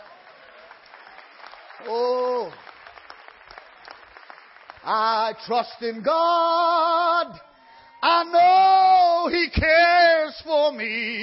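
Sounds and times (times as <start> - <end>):
congregation clapping: 0.0 - 7.4
speech: 1.8 - 2.7, 4.8 - 11.2.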